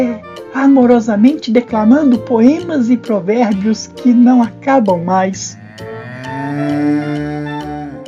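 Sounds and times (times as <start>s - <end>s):
speech: 0.0s - 5.9s, 6.6s - 7.1s
cow mooing: 5.3s - 8.0s.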